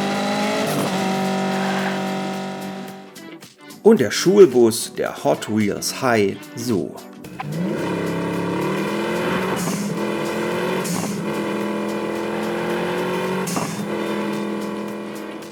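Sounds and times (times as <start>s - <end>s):
car engine droning and revving: 0.0s - 3.2s, 7.3s - 15.4s
speech: 3.8s - 7.7s.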